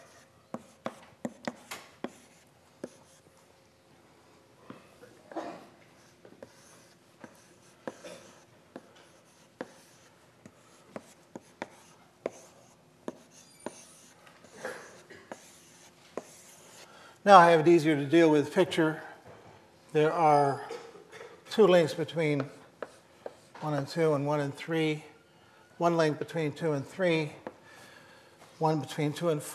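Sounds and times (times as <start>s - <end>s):
pen tapping and scratching writing numbers onto a line drawing: 0.0s - 3.2s, 6.0s - 16.6s
speech: 17.2s - 19.1s, 19.9s - 20.8s, 21.6s - 22.6s, 23.6s - 25.1s, 25.8s - 27.4s, 28.6s - 29.5s.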